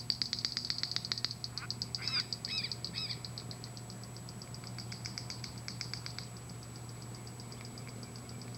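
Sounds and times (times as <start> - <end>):
Wren-like Rushbird song dry ticking series: 0.0 - 8.5.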